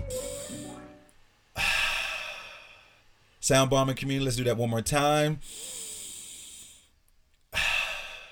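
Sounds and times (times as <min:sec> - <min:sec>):
person breathing deeply during a guided breathing exercise: 0:00.1 - 0:00.8, 0:01.5 - 0:03.1, 0:05.4 - 0:06.9, 0:07.5 - 0:08.3
speech: 0:03.5 - 0:05.7.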